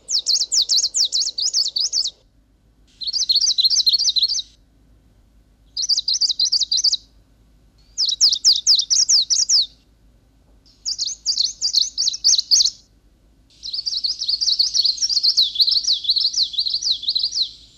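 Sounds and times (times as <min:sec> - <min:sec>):
bird songs from different populations across Siberia and Central Asia: 0:00.0 - 0:02.2, 0:02.9 - 0:04.6, 0:05.7 - 0:07.1, 0:07.8 - 0:09.8, 0:10.7 - 0:12.8, 0:13.5 - 0:17.7.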